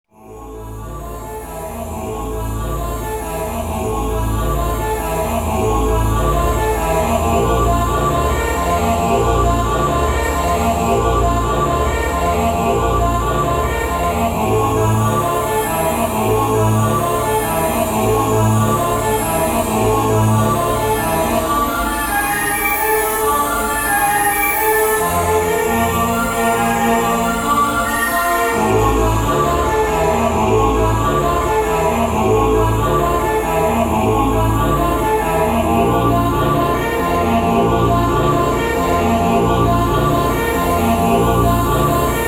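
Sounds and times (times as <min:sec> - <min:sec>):
choir singing: 0:00.1 - 0:42.2.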